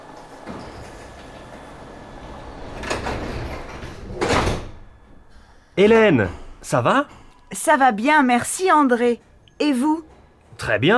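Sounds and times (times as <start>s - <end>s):
metro sliding doors hissing and thudding: 0.0s - 5.8s
metro carriage humming and rumbling: 0.0s - 10.1s
speech: 5.8s - 10.9s.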